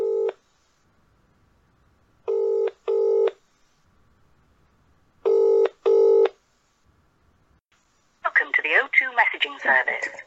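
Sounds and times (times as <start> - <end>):
outgoing phone call electronic double-pulse ringing tone: 2.3 - 3.4, 5.3 - 6.4
recorded-sounding voice speaking: 8.2 - 10.2.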